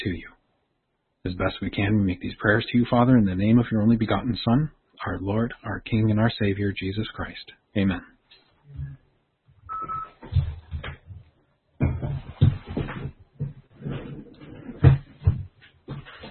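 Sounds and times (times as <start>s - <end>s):
speech: 0.0s - 0.3s, 1.2s - 8.1s, 8.7s - 9.0s
office chair rolling and scraping across a hard floor: 11.9s - 15.3s.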